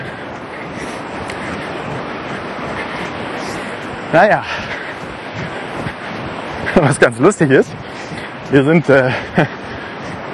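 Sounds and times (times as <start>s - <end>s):
gentle small sea waves washing onto a beach on a calm sea: 0.0s - 10.3s
light wind noise: 0.0s - 10.3s
speech: 4.1s - 4.8s, 6.8s - 7.8s, 8.5s - 9.6s
laughter: 6.6s - 7.2s, 8.9s - 10.1s.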